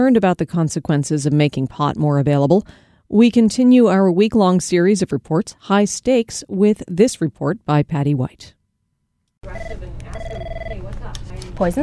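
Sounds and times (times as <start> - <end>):
speech: 0.0 - 8.6, 9.4 - 10.8, 11.6 - 11.8
electronic telephone trilling ring at a regional poison center in Portland: 9.4 - 10.9.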